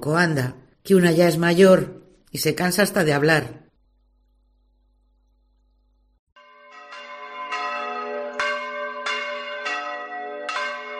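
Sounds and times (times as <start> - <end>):
speech: 0.0 - 3.6
church bells pealing: 6.4 - 10.9.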